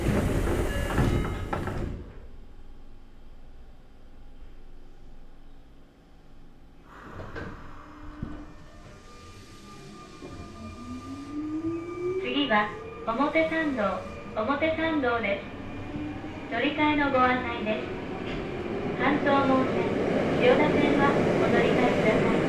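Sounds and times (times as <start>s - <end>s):
train doors sliding shut with a loud thump: 0.0s - 2.4s, 6.9s - 11.2s, 18.1s - 18.8s
speech: 12.5s - 15.5s, 16.5s - 18.0s, 19.0s - 22.4s.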